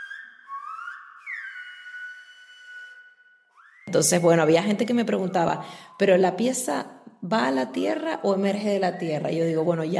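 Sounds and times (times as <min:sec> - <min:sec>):
person whistling a tune: 0:00.0 - 0:04.2
speech: 0:03.9 - 0:09.9.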